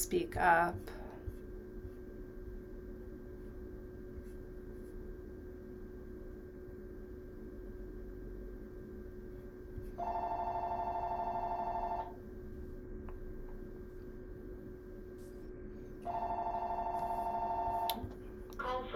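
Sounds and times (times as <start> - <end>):
steady low room hum: 0.0 - 18.9
speech: 0.1 - 0.9
telephone ringing: 10.0 - 12.2, 16.0 - 18.0.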